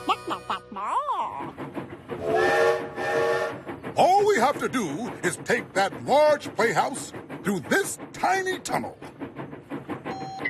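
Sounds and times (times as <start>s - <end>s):
train rolling in: 0.0s - 10.4s
train whistle blowing in sustained bending tones: 2.2s - 3.6s
speech: 4.4s - 9.1s.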